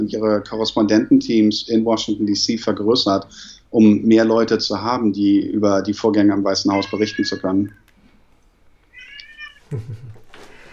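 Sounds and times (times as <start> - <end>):
speech: 0.0 - 7.8, 9.7 - 10.1
newborn baby boy crying: 6.7 - 7.8
laughter: 9.6 - 10.7.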